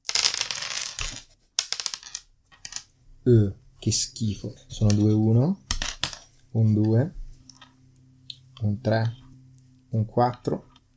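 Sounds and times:
handful of dice rattling and tumbling across a hard surface: 0:00.0 - 0:02.9
speech: 0:03.3 - 0:05.6, 0:06.5 - 0:07.2, 0:08.6 - 0:09.2, 0:09.9 - 0:10.9.

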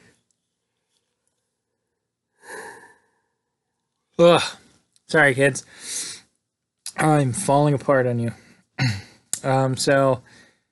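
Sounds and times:
person yawning with a voiced groan: 0:02.4 - 0:03.1
speech: 0:04.2 - 0:06.1, 0:07.0 - 0:10.4.

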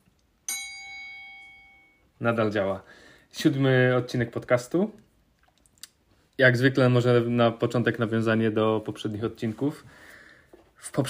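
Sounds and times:
bright metallic bell ding: 0:00.5 - 0:02.1
speech: 0:02.2 - 0:05.0, 0:06.4 - 0:10.1, 0:10.8 - 0:11.0.

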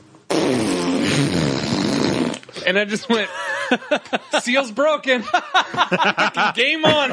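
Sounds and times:
vocal imitation of a fart: 0:00.3 - 0:02.6
speech: 0:02.7 - 0:07.1
laughter: 0:02.9 - 0:07.1.

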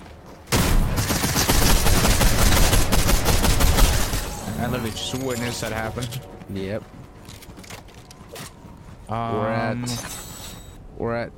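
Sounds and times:
video game gunfire: 0:00.5 - 0:04.4
speech: 0:04.7 - 0:07.0, 0:09.1 - 0:10.2, 0:11.0 - 0:11.3.

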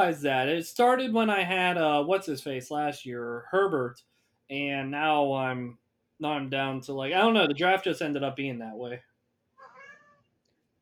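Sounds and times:
speech: 0:00.0 - 0:09.1
cat meow: 0:09.6 - 0:10.3.

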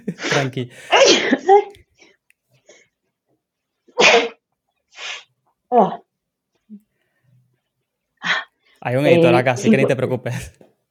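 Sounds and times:
laughter: 0:00.0 - 0:00.9
speech: 0:00.1 - 0:01.6, 0:08.9 - 0:10.7
person sneezing: 0:00.2 - 0:01.5, 0:04.0 - 0:04.4, 0:05.0 - 0:05.3
sniff: 0:04.2 - 0:05.3.

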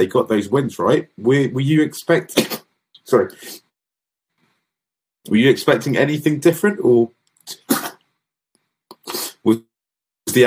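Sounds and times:
speech: 0:00.0 - 0:03.6, 0:05.2 - 0:07.8, 0:09.4 - 0:09.7, 0:10.3 - 0:10.4
person sneezing: 0:02.3 - 0:02.7, 0:07.5 - 0:08.0, 0:09.0 - 0:09.4
gasps and throaty sounds: 0:02.3 - 0:03.7, 0:07.4 - 0:08.1, 0:08.8 - 0:09.6.

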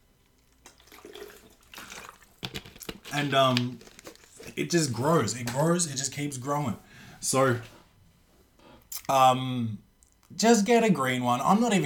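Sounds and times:
water poured into a potted tree: 0:00.5 - 0:03.2
speech: 0:03.1 - 0:03.9, 0:04.5 - 0:07.8, 0:09.1 - 0:11.8.

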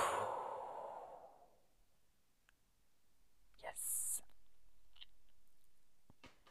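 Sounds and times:
slow exhale during a breathing exercise: 0:00.0 - 0:01.6.

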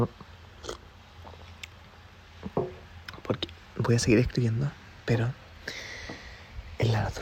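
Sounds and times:
speech: 0:00.0 - 0:00.8, 0:03.9 - 0:05.8
person slurping hot coffee: 0:00.6 - 0:00.8.

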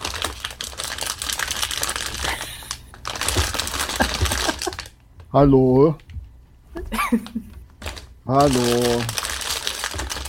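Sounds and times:
chip bag crinkling: 0:00.0 - 0:05.0, 0:07.1 - 0:10.2
laughter: 0:03.9 - 0:04.9
speech: 0:05.3 - 0:06.0, 0:07.1 - 0:07.5, 0:08.3 - 0:09.2.

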